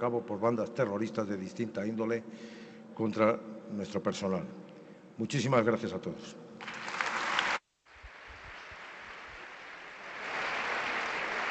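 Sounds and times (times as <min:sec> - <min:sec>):
speech: 0:00.0 - 0:04.6, 0:05.2 - 0:06.8
large audience applause: 0:06.6 - 0:11.4.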